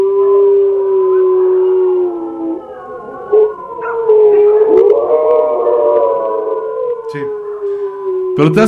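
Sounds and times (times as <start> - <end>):
several dogs howling together: 0.0 - 8.6
speech: 8.4 - 8.6.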